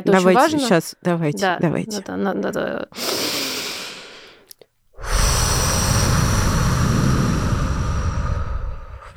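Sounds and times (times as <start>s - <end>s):
speech: 0.0s - 3.4s
long loud noisy exhale: 3.0s - 4.4s, 5.0s - 9.1s
shorter breath: 3.0s - 9.1s.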